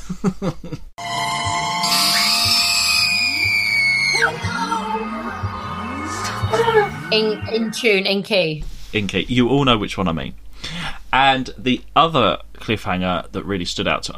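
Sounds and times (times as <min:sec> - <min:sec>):
speech: 0:00.1 - 0:01.1, 0:06.8 - 0:10.4, 0:11.1 - 0:14.1
rhythmic electronic music: 0:01.0 - 0:08.3
swooping sound effects: 0:01.4 - 0:08.1
half-Vervoid woman screaming in a TV scene: 0:01.9 - 0:05.3.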